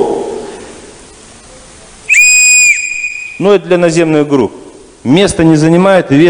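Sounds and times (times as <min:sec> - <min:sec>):
rescue whistle blast used to signal for help: 0:02.1 - 0:03.6
speech: 0:03.4 - 0:06.2.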